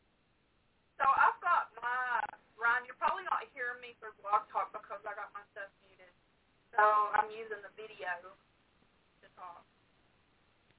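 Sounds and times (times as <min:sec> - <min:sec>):
voice echoing on a thin band-limited call line: 0:01.0 - 0:06.1, 0:06.8 - 0:08.4.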